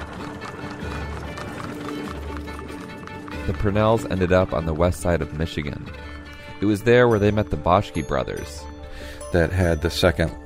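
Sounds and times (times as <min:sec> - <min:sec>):
carriage wheels rolling rumble: 0:00.0 - 0:07.8
horse and carriage hooves clip-clopping: 0:00.0 - 0:07.8
speech: 0:03.4 - 0:08.7, 0:09.3 - 0:10.4.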